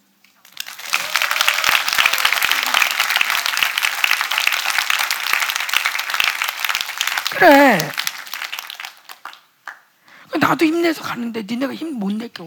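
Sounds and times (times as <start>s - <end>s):
audience applause at a youth church gathering: 0.4s - 9.8s
speech: 7.4s - 8.0s, 10.5s - 12.4s.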